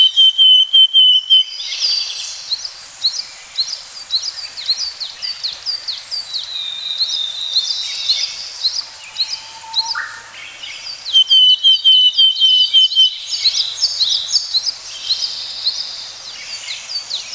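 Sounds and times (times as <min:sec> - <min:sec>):
willow tit calling repeated notes: 0:00.0 - 0:15.8
many high chirps: 0:08.7 - 0:10.6.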